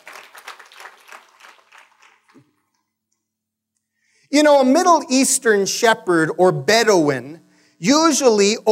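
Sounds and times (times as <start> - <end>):
large audience applauding: 0.0 - 2.8
speech: 4.3 - 8.7.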